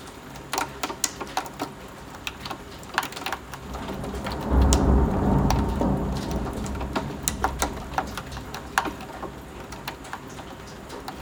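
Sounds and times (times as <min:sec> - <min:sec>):
scattered sharp drips: 0:00.0 - 0:11.2
steady rain pattering: 0:00.0 - 0:11.2
deep low rumble of thunder: 0:03.4 - 0:11.2.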